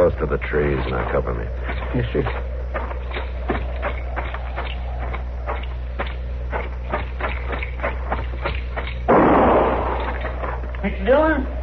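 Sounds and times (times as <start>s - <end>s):
speech: 0.0s - 2.5s
low hum: 0.0s - 11.6s
gunshot fired inside a shack: 9.1s - 10.2s.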